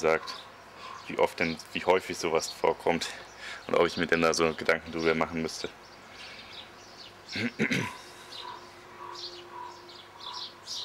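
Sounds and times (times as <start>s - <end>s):
speech: 0.0s - 0.5s, 1.1s - 5.8s, 7.3s - 8.0s
large bird squawking: 0.0s - 1.6s, 6.1s - 10.8s
bird chirping: 0.0s - 10.8s.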